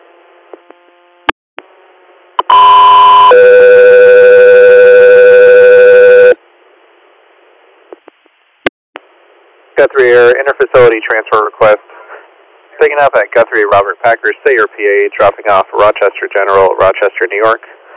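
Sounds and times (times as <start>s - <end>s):
radio dispatch alert tones: 2.4s - 6.4s
speech: 10.0s - 11.9s, 12.8s - 17.8s.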